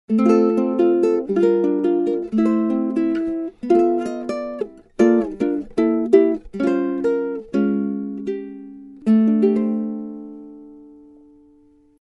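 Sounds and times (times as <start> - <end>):
tenor ukulele: 0.1 - 12.0.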